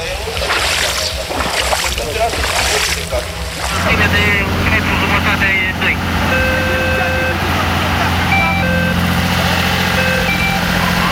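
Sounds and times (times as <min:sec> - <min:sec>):
deep floodwater sloshing and splashing: 0:00.0 - 0:05.2
faint indistinct voices murmuring: 0:00.0 - 0:11.1.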